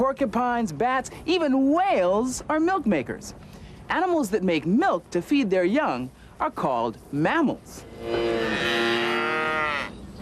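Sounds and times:
speech: 0.0 - 8.7
cow mooing: 7.9 - 10.0.

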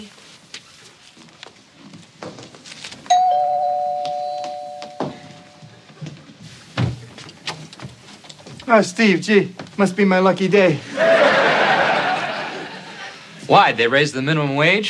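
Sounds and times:
doorbell ringing: 3.1 - 5.9
speech: 8.7 - 11.0, 13.5 - 14.8
laughter: 10.7 - 13.4.

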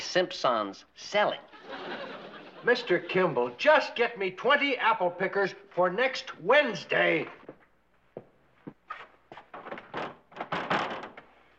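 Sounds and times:
speech: 0.1 - 2.0, 2.6 - 7.4
laughter: 1.5 - 3.6
locked door being tried and rattled: 9.6 - 11.3.

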